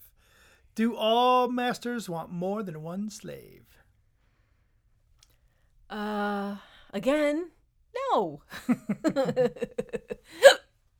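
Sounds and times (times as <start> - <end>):
speech: 0.8 - 3.8, 5.9 - 10.6
laughter: 8.6 - 10.3
hiccup: 10.4 - 10.7.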